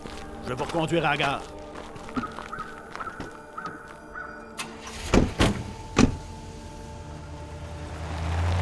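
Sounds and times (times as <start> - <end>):
speech: 0.4 - 1.6
truck engine rumbling and pulling away: 4.5 - 8.6
door-like clunks: 4.6 - 6.3.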